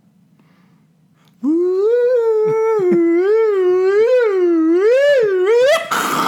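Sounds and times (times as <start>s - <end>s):
voice imitating a sci-fi time-travel effect: 1.4s - 6.2s.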